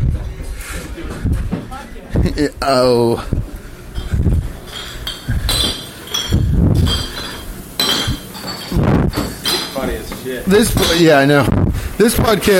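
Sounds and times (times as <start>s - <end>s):
speech: 2.3s - 3.4s, 10.3s - 12.5s
glassware clinking in a kitchen: 4.0s - 10.0s, 10.6s - 11.3s.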